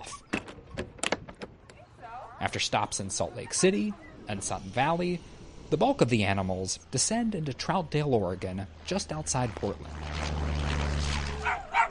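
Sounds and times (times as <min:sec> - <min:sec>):
low engine-like rumble: 0:01.6 - 0:11.8
speech: 0:02.4 - 0:10.4
dog barking and yipping: 0:11.4 - 0:11.8.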